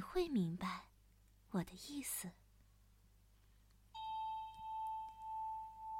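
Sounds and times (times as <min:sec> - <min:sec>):
quiet hum: 0:00.0 - 0:05.9
speech: 0:00.1 - 0:00.9, 0:01.5 - 0:02.4
small bell struck and ringing with a clear sustained tone: 0:04.0 - 0:05.9.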